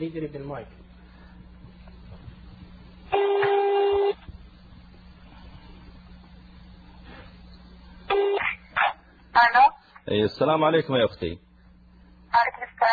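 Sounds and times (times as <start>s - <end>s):
speech: 0.0s - 0.9s, 9.4s - 11.5s, 12.4s - 12.9s
landline telephone ringing over a phone line: 3.1s - 4.2s, 8.1s - 8.5s.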